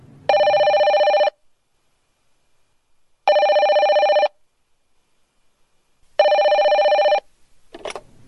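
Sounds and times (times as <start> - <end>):
telephone ringing with bright electronic rings: 0.3 - 1.4, 3.3 - 4.4, 6.2 - 7.3.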